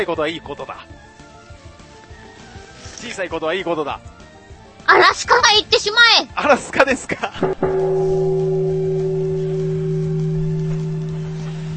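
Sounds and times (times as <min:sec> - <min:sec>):
speech: 0:00.0 - 0:01.0, 0:03.0 - 0:04.1, 0:04.9 - 0:08.0
deep Buddhist temple bell resonating: 0:07.4 - 0:11.7.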